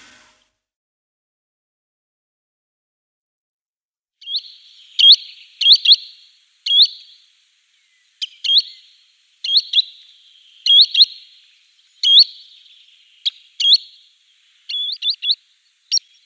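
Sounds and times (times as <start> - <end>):
green sandpiper calls: 4.2 - 16.2.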